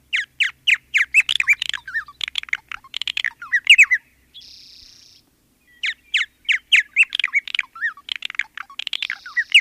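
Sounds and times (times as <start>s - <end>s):
purple martin singing: 1.0s - 4.0s, 5.8s - 9.5s.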